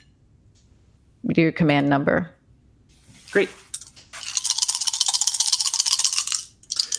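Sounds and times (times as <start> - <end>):
speech: 1.3 - 2.4, 3.3 - 3.6
challenge dice rattling in a cupped hand for a tabletop game: 4.2 - 6.9.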